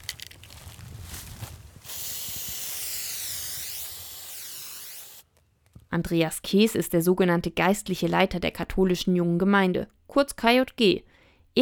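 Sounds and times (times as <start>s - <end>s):
aerosol spray can rattling as it is shaken: 1.8s - 5.2s
speech: 6.0s - 11.5s.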